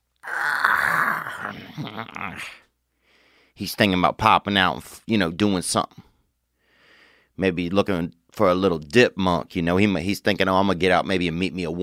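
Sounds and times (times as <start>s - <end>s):
voice imitating a chipmunk yawning: 0.2s - 2.6s
speech: 1.4s - 2.6s, 3.6s - 6.1s, 7.4s - 11.8s.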